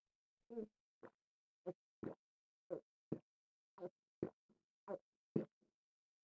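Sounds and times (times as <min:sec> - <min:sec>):
soft gulping pulses: 0:02.0 - 0:03.2, 0:03.8 - 0:05.5.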